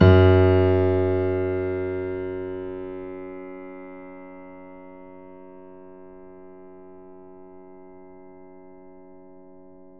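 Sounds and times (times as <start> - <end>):
grand piano note F sharp 1 played forte: 0.0 - 2.6.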